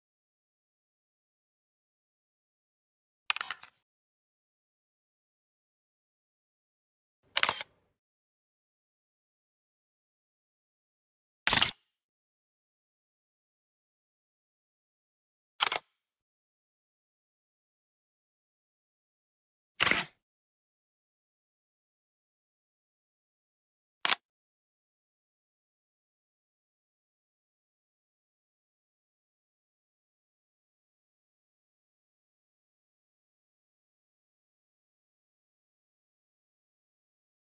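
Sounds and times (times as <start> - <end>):
camera shutter: 3.3 - 3.8, 7.3 - 7.7, 11.5 - 11.8, 15.6 - 15.9, 19.8 - 20.2.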